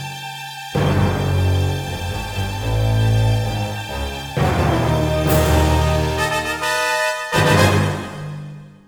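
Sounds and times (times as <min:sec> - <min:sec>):
boss raid intro music: 0:00.8 - 0:08.7.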